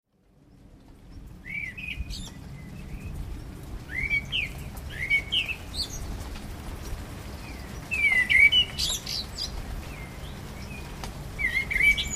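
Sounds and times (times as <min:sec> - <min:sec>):
common blackbird singing: 0:01.4 - 0:03.1, 0:03.9 - 0:06.1, 0:07.4 - 0:12.1.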